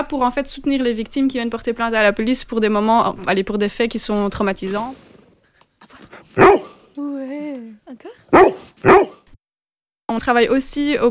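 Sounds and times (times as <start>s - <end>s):
speech: 0.0s - 5.1s, 6.0s - 9.2s, 10.1s - 11.1s
assistance dog whining: 5.9s - 6.9s, 8.3s - 9.2s
assistance dog barking: 6.3s - 6.8s, 8.3s - 9.3s.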